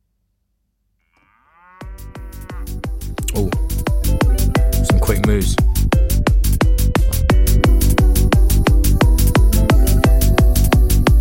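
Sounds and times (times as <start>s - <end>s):
drawn-out cow moo sample: 1.0s - 3.8s
fast four-on-the-floor kick drum: 1.8s - 11.2s
techno bootleg remix: 2.0s - 11.2s
speech: 3.3s - 3.6s, 5.2s - 5.6s.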